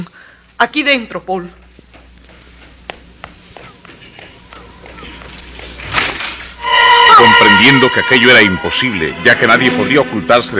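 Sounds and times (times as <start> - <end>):
speech: 0.0 - 1.6, 7.6 - 10.5
quick footsteps tapping across a floor: 1.5 - 6.6.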